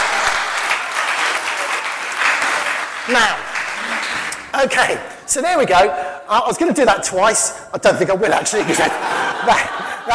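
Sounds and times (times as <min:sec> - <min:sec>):
audience applause: 0:00.0 - 0:04.5
speech: 0:03.1 - 0:03.4, 0:04.6 - 0:10.1
laughter: 0:08.4 - 0:10.1.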